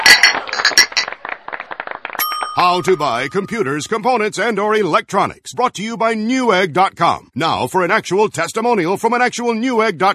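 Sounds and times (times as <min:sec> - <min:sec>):
glasses of light summer beer clinking in a toast: 0:00.0 - 0:01.1, 0:02.2 - 0:03.8
speech: 0:02.6 - 0:10.1.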